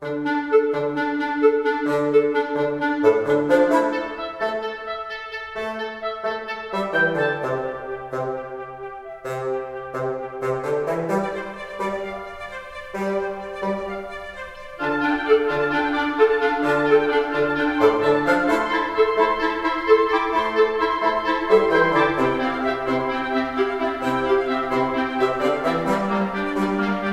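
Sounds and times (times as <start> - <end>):
woodwind breakdown music: 0.0 - 27.1.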